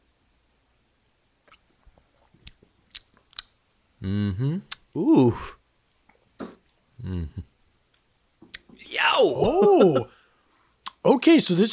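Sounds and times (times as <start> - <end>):
small wet mouth clicks: 1.1 - 3.6, 4.6 - 4.9, 10.8 - 11.0
person sipping a cocktail with soft slurps: 1.3 - 3.5
speech: 4.0 - 5.6, 7.1 - 7.5, 9.2 - 10.2, 11.2 - 11.7.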